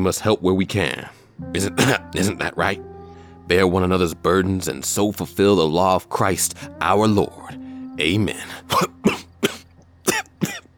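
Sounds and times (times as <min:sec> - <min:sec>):
speech: 0:00.0 - 0:02.9, 0:03.5 - 0:08.9
harsh coughs: 0:01.7 - 0:02.4, 0:08.6 - 0:10.6.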